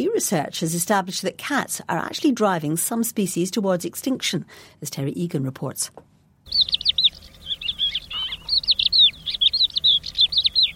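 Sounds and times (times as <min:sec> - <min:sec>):
speech: 0:00.0 - 0:06.8
crested lark singing clear whistled notes: 0:06.5 - 0:10.7.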